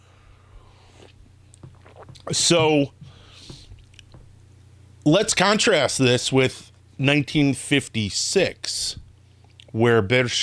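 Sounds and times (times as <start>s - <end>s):
low steady hum: 0.0s - 10.4s
person slurping coffee: 0.7s - 2.3s
mouth sounds: 0.9s - 4.0s
speech: 2.3s - 3.0s, 5.0s - 9.0s, 9.7s - 10.4s.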